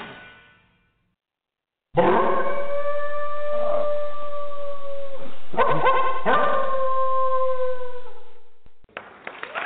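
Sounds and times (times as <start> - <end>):
loud wavering howling: 2.0 - 8.7.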